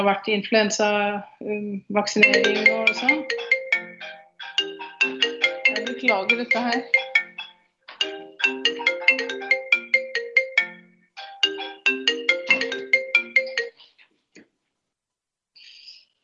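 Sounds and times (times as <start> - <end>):
speech: 0.0 - 3.6, 6.0 - 7.0
melodic telephone ringtone: 2.2 - 13.8.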